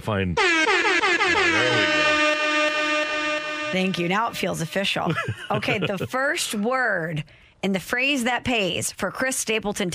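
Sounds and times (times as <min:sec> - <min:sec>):
speech: 0:00.0 - 0:02.0, 0:03.7 - 0:09.9
air horn blast as radio contest sounder: 0:00.4 - 0:05.0
laughter: 0:05.0 - 0:06.4.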